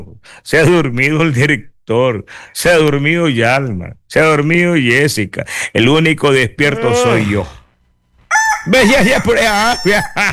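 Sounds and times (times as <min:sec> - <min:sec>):
speech: 0:00.0 - 0:07.6, 0:08.6 - 0:10.3
rooster crowing: 0:06.7 - 0:07.6, 0:08.3 - 0:10.2.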